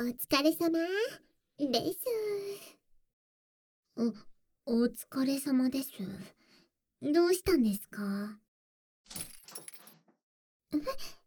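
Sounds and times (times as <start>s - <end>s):
speech: 0.0s - 2.8s, 4.0s - 6.4s, 7.0s - 8.4s, 9.1s - 9.6s, 10.7s - 11.2s
keys jingling: 9.1s - 10.1s.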